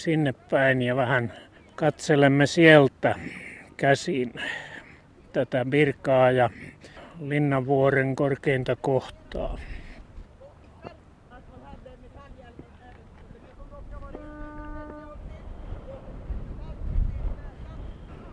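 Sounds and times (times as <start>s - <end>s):
speech: 0.0s - 4.7s, 5.3s - 9.7s
strong wind buffeting the microphone on an exposed hilltop: 13.3s - 18.3s
brief horn-like tone: 14.1s - 15.2s.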